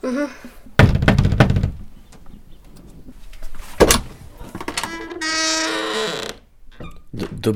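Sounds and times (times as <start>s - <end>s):
speech: 0.0s - 0.6s, 7.4s - 7.5s
knocking on a wooden cottage door: 0.8s - 1.9s
drawn-out creaking squealing sound: 4.4s - 7.1s.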